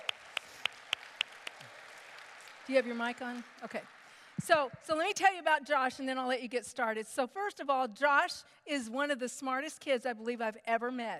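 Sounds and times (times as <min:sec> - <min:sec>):
crisp claps in a room: 0:00.0 - 0:04.6
speech: 0:02.7 - 0:11.1.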